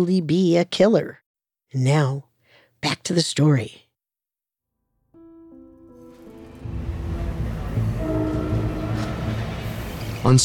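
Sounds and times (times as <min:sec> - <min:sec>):
speech: 0:00.0 - 0:03.8, 0:10.2 - 0:10.4
train horn: 0:06.0 - 0:10.4.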